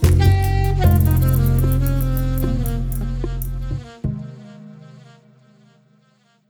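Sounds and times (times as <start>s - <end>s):
saxophone playing: 0.0s - 5.8s.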